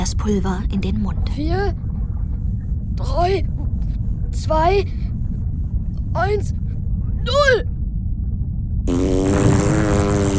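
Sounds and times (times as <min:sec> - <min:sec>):
low rumble: 0:00.0 - 0:10.3
speech: 0:00.1 - 0:01.9, 0:03.0 - 0:03.6, 0:04.3 - 0:05.0, 0:06.2 - 0:06.6, 0:07.2 - 0:07.7
loud buzzing harmonic comic fart sound effect: 0:08.9 - 0:10.3.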